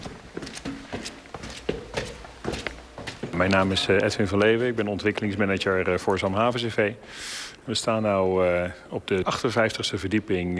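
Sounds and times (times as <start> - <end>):
footsteps climbing stairs in a high-rise tower: 0.0 - 6.3
speech: 3.4 - 10.5.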